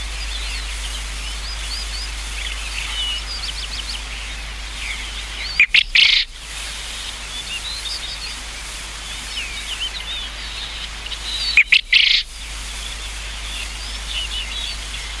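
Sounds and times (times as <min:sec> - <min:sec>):
other birds chirping: 0:00.0 - 0:15.1
Japanese quail rough three-note call: 0:02.3 - 0:07.1, 0:09.7 - 0:12.9.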